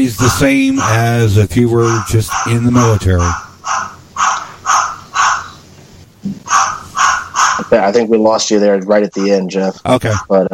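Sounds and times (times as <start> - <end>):
speech: 0.0 - 3.4, 7.7 - 10.5
parrot imitating dog barking: 0.2 - 5.6, 6.4 - 7.7.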